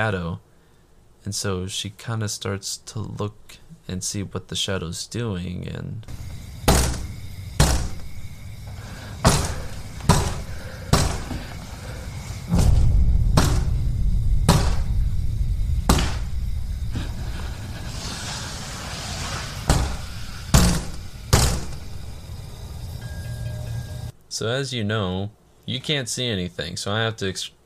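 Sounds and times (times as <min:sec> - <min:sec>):
speech: 0:00.0 - 0:00.5, 0:01.2 - 0:06.4, 0:24.4 - 0:27.6
banging on a window with a dead body: 0:06.1 - 0:22.2
low rumbling noise: 0:06.1 - 0:24.1.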